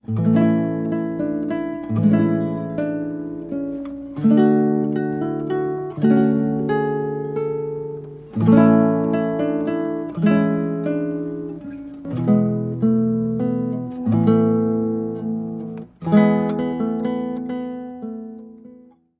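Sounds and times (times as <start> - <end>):
lute song: 0.0 - 18.8.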